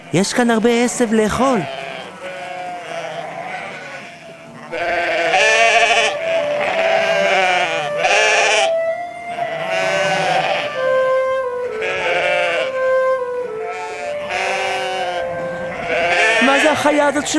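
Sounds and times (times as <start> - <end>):
speech: 0.1 - 1.8, 16.8 - 17.3
small flock of sheep bleating: 1.2 - 8.7, 9.3 - 10.8, 11.6 - 12.8, 13.6 - 17.3.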